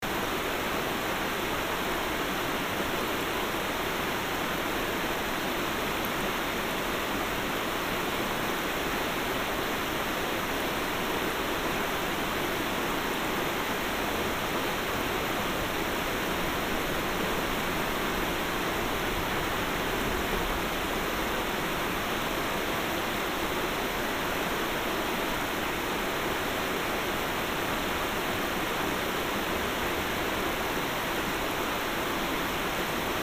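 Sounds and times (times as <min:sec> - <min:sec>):
river ambience recorded binaurally: 0:00.0 - 0:33.2.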